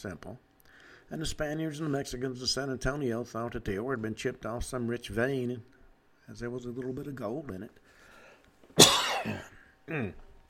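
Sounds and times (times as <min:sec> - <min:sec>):
speech: 0:00.0 - 0:00.5, 0:01.1 - 0:05.7, 0:06.3 - 0:07.9, 0:08.8 - 0:10.2
harsh coughs: 0:08.8 - 0:10.2.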